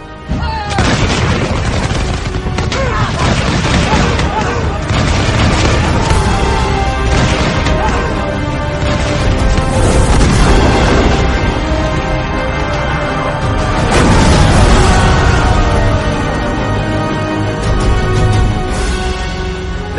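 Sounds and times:
roaring chaos of naval combat between galleys: 0.0s - 19.9s
arquebus gunfire in a naval battle between galleys: 0.7s - 11.5s.

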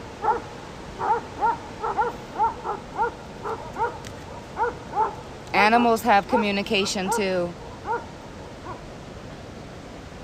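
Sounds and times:
constant hiss: 0.0s - 10.2s
dogs barking in short yelping barks: 0.2s - 5.2s, 6.3s - 8.8s
speech: 5.7s - 7.6s.

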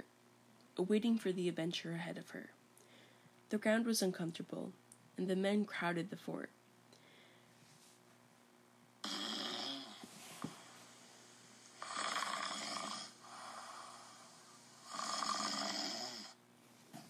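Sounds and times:
speech: 0.8s - 2.6s, 3.5s - 6.6s
quiet breathing: 2.8s - 3.5s, 6.9s - 8.0s, 9.7s - 16.4s
men snoring inside a tent: 9.0s - 10.0s, 11.6s - 16.4s.

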